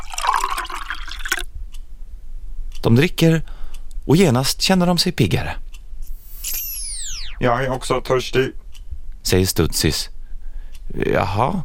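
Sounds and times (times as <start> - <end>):
water poured from a jug: 0.0 - 1.5
speech: 2.8 - 5.6, 7.4 - 8.6, 9.2 - 10.2, 10.9 - 11.6.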